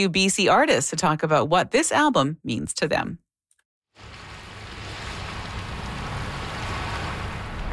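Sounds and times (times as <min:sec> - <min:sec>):
speech: 0:00.0 - 0:03.2
low rumble: 0:04.0 - 0:07.7
seaside surf: 0:04.0 - 0:07.7
seaside wind: 0:04.0 - 0:07.7.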